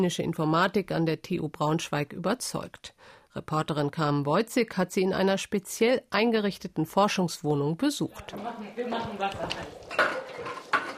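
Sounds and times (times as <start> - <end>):
speech: 0.0 - 10.6
cookware knocking and clinking: 8.2 - 10.9
metal pot of boiling water taken off the stove: 8.2 - 10.9.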